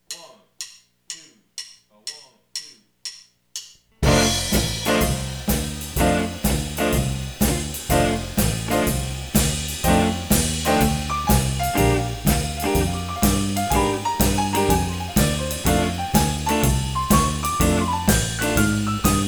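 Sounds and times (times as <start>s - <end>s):
swing blues music in F: 4.0s - 19.2s.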